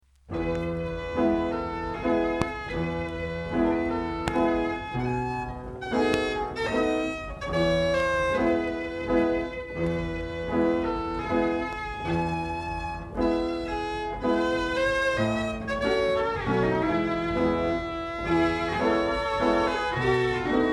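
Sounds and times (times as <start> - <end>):
self-playing violin and piano: 0.3 - 20.7.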